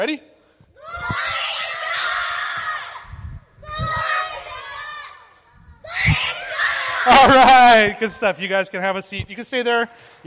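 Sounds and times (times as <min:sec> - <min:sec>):
speech: 0:00.0 - 0:01.3, 0:07.2 - 0:10.2
large group of children yelling in unison: 0:00.8 - 0:07.9.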